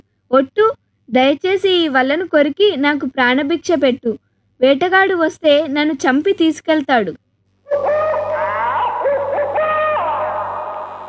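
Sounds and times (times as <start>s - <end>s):
speech: 0.3s - 8.0s
owl hooting in a tree: 7.6s - 11.0s.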